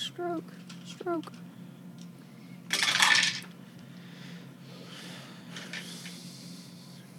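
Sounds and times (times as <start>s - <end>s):
low steady hum: 0.0s - 7.1s
speech: 0.2s - 1.5s
many dice rolled at once clattering: 2.7s - 3.5s.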